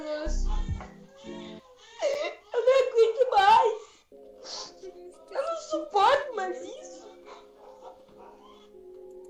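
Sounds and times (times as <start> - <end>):
baby crying: 0.4 - 3.8, 8.2 - 8.8.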